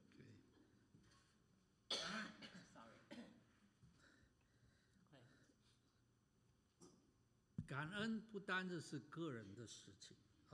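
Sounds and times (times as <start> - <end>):
person coughing: 1.9 - 3.4
speech: 7.7 - 10.5.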